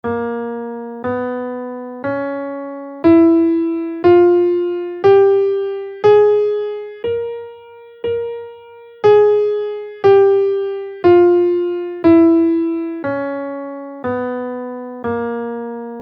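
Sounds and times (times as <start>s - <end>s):
dorian b2 scale in Bb minor: 0.1s - 16.0s.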